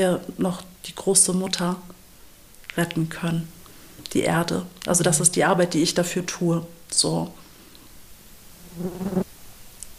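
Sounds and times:
speech: 0.0s - 2.0s, 2.8s - 7.4s, 8.8s - 9.2s
fly buzzing on the microphone: 8.6s - 9.3s.

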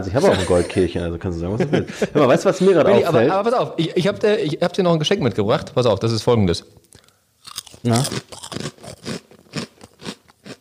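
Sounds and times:
laughter: 0.0s - 3.3s
speech: 0.0s - 6.8s, 7.8s - 9.1s
person chewing crispy lentil chips: 7.0s - 10.6s.

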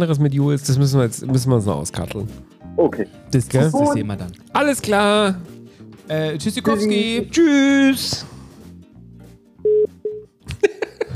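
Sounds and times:
speech: 0.0s - 8.4s
telephone signal of an incoming call, electronic beep tones: 9.6s - 10.2s
laughter: 10.5s - 11.1s.

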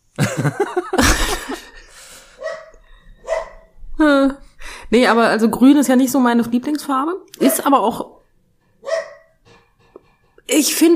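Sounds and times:
laughter: 0.2s - 1.9s
speech: 0.4s - 1.6s, 4.0s - 8.2s, 10.5s - 10.9s
dog yelping: 2.4s - 3.7s, 8.8s - 9.4s
dog barking: 2.4s - 3.8s, 7.4s - 7.7s, 8.8s - 9.6s.

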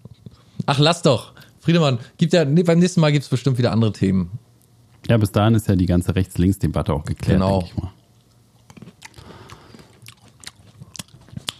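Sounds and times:
speech: 0.7s - 4.4s, 5.1s - 8.0s
wet chewing with loud smacking and crunchy bites: 7.9s - 11.5s.

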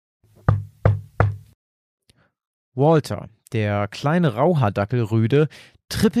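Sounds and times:
firm knocks on a wooden house door: 0.4s - 1.5s
speech: 2.8s - 6.1s.

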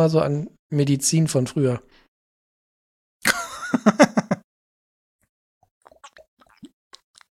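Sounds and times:
speech: 0.0s - 2.0s
laughter: 3.3s - 4.4s
small wet sounds: 5.6s - 7.3s
people gulping shots of liquor: 5.7s - 7.3s.

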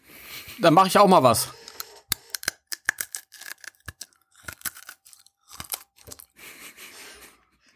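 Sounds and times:
speech: 0.6s - 1.6s
hard candy being eaten: 1.6s - 6.4s.

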